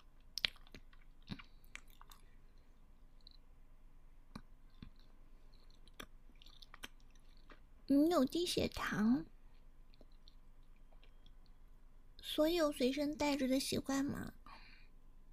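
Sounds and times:
chewing chocolate: 0.2 - 3.5, 4.3 - 7.7, 9.5 - 11.6
soft wet mouth clicks: 0.3 - 3.5, 4.3 - 7.6, 9.9 - 11.6
speech: 7.9 - 9.3, 12.4 - 14.4.

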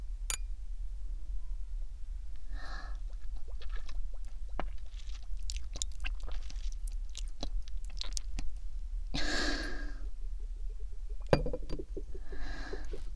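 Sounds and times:
low steady hum: 0.0 - 13.1
glasses clinking in a toast: 11.3 - 11.8.

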